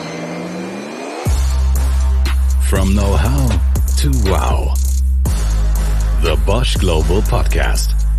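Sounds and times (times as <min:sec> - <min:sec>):
car engine starting and revving: 0:00.0 - 0:06.0
speech: 0:02.7 - 0:04.8, 0:06.2 - 0:08.0.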